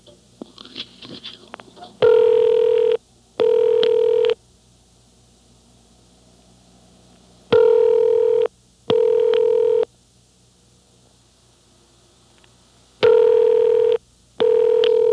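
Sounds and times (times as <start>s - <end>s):
telephone double ring tone: 2.0s - 4.4s, 7.5s - 9.8s, 13.0s - 15.1s.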